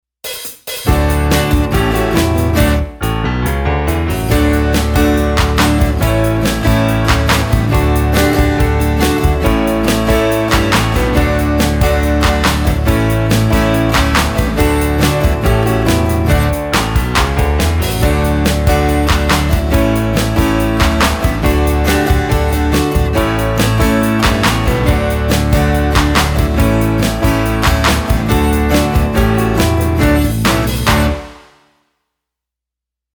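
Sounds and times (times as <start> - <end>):
instrumental music: 0.3 - 31.6.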